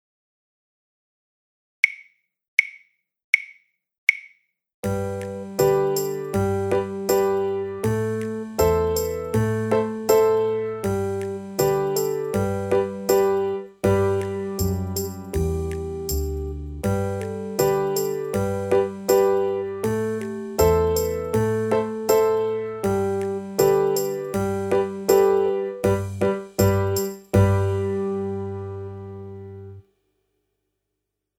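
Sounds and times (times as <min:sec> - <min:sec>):
eighth note workout backing track: 0:04.8 - 0:29.8.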